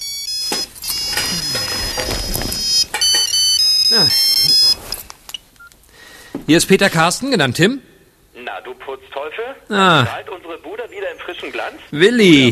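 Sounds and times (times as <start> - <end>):
mobile phone ringtone with bright repeating electronic melody: 0.0 - 5.0
speech: 6.5 - 7.9, 8.6 - 12.5.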